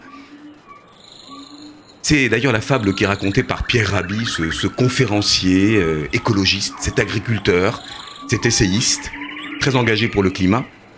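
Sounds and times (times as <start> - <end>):
lower drawn-out animal cries in the Amazon rainforest: 0.0 - 3.2, 6.2 - 9.7
high whistling animal calls in the Amazon rainforest: 0.0 - 10.7
Amazon rainforest ambience: 0.0 - 10.9
speech: 2.1 - 10.8.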